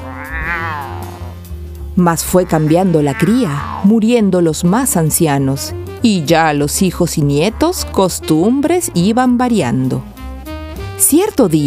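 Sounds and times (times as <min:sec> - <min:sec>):
kitten meowing: 0:00.0 - 0:01.4, 0:02.2 - 0:04.0
speech: 0:02.0 - 0:10.1, 0:11.0 - 0:11.6.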